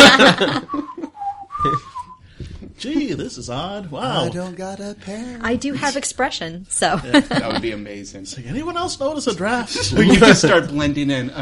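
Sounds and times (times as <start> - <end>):
laughter: 0.0 - 1.8, 7.0 - 7.8, 9.5 - 10.8
speech: 0.2 - 0.9, 1.6 - 1.9, 2.8 - 11.4
person whistling tuneless notes: 0.7 - 2.3.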